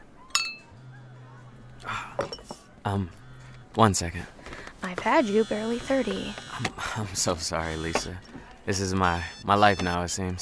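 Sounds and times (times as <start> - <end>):
glasses clinking in a toast: 0.3 - 0.7, 2.1 - 2.7
speech: 1.8 - 10.3.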